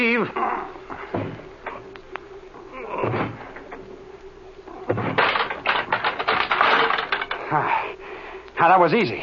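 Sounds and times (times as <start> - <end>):
speech: 0.0 - 1.0, 8.6 - 9.2
flimsy door lock rattling, creaking and clattering metal as it gives way: 5.2 - 7.4.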